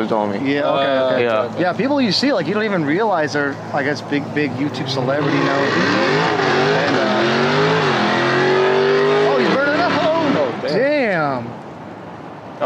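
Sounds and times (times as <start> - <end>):
speech: 0.0 - 7.0
V8 muscle car engine roaring and revving: 3.8 - 10.7.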